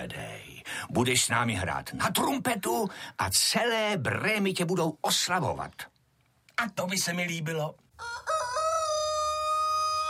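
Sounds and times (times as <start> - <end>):
speech: 0.0 - 5.9, 6.6 - 8.3
rooster crowing: 8.0 - 10.0.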